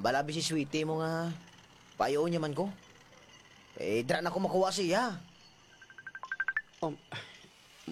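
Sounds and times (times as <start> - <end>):
speech: 0.0 - 2.9, 3.8 - 5.3, 6.8 - 7.3
mobile phone ringing with incoming Messenger call: 5.7 - 6.7.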